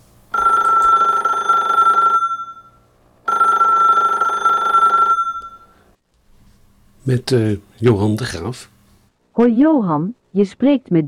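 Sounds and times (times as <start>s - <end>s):
telephone ringing with loud electronic bursts: 0.3s - 5.9s
speech: 7.1s - 8.8s, 9.4s - 11.0s.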